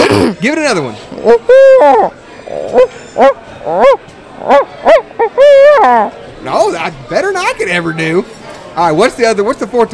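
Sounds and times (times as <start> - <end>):
speech: 0.2 - 9.9
person imitating an owl's hoot with their voice: 1.1 - 6.1.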